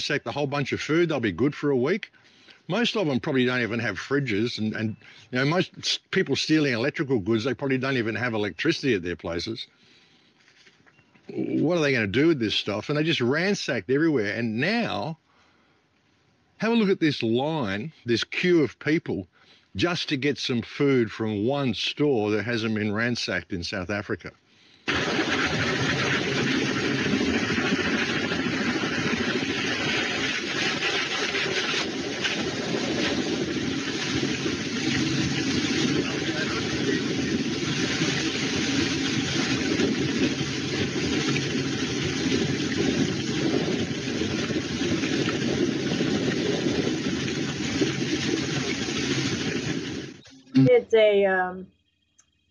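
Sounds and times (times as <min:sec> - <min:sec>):
speech: 0:00.0 - 0:09.8, 0:11.3 - 0:15.2, 0:16.6 - 0:25.4, 0:50.8 - 0:51.8
helicopter rotor and engine flying overhead in South Africa: 0:24.9 - 0:50.0.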